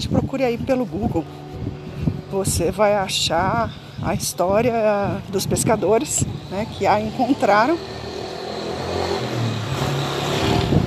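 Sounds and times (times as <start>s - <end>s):
speech: 0.0s - 1.4s, 2.3s - 8.2s
motorcycle engine droning past and revving: 5.7s - 10.8s.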